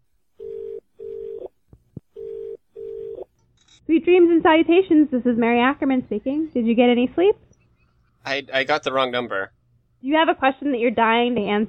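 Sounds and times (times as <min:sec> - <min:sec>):
telephone dialing a number: 0:00.4 - 0:01.5, 0:02.2 - 0:03.3
speech: 0:03.9 - 0:07.4, 0:08.2 - 0:11.6.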